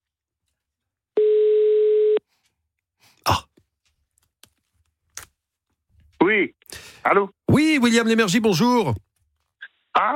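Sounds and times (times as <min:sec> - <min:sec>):
telephone ringing tone: 0:01.2 - 0:02.2
speech: 0:06.3 - 0:09.1, 0:10.0 - 0:10.1.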